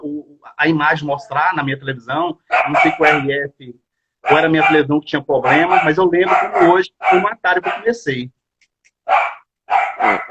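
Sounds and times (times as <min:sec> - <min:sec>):
speech: 0:00.6 - 0:08.4, 0:10.0 - 0:10.2
small dog barking: 0:02.5 - 0:03.4, 0:04.2 - 0:07.9, 0:09.0 - 0:10.2.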